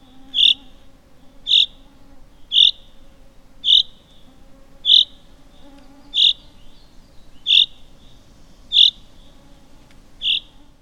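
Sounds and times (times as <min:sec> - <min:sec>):
common chaffinch calling with short bright high notes: 0:00.0 - 0:03.0, 0:03.6 - 0:09.4, 0:10.2 - 0:10.5.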